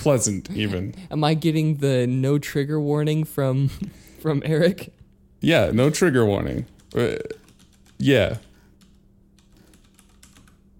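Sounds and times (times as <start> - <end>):
speech: 0.0 - 7.4, 8.0 - 8.5
computer keyboard typing: 6.4 - 10.7.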